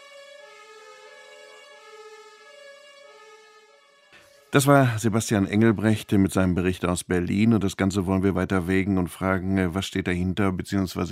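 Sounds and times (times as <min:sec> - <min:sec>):
German two-tone emergency vehicle siren: 0:00.0 - 0:06.3
speech: 0:04.5 - 0:11.1.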